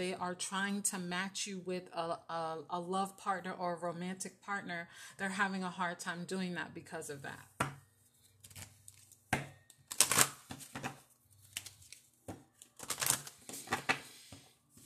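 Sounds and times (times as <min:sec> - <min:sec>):
speech: 0:00.0 - 0:07.6
deck of oracle cards shuffling: 0:09.9 - 0:12.0, 0:12.6 - 0:14.8.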